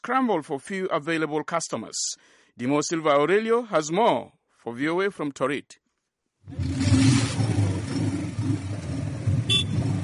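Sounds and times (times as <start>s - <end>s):
speech: 0.0s - 5.8s, 6.4s - 7.0s
boda boda motorbike taxi engine revving near Torit Civil Hospital in Torit: 6.5s - 10.0s.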